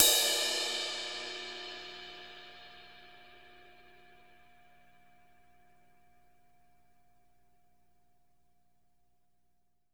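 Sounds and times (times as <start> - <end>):
crash cymbal hit: 0.0 - 3.4.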